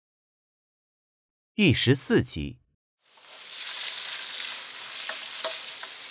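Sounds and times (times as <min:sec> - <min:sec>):
speech: 0:01.6 - 0:02.6
beaten eggs stir-fried in hot oil: 0:03.0 - 0:06.1
spatula scraping while stir-frying eggs: 0:03.1 - 0:06.1.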